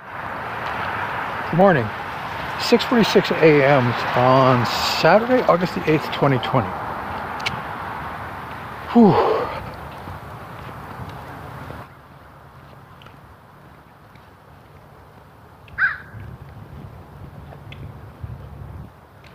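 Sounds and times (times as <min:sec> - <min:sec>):
steady outdoor noise: 0:00.0 - 0:19.3
speech: 0:01.5 - 0:02.0, 0:02.6 - 0:06.8, 0:08.9 - 0:09.3
crow cawing outdoors: 0:15.8 - 0:16.2.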